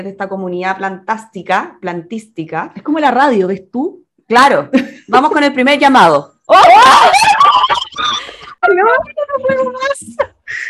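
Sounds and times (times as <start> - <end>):
speech: 0.0 - 7.7, 8.7 - 10.6
people screaming in surprise: 6.5 - 8.5
people snickering and laughing: 6.7 - 9.0.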